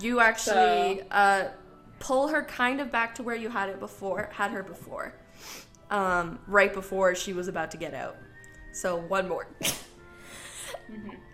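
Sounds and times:
speech: 0.0 - 9.8, 10.9 - 11.3
soft breathy sneeze: 9.6 - 10.0.

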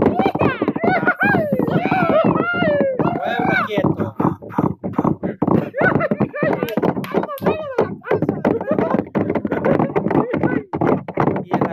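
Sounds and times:
voice imitating galloping horse hooves with clip-clop sounds: 0.0 - 11.7
laughter: 0.4 - 10.7
voiced whoops: 0.8 - 3.2.

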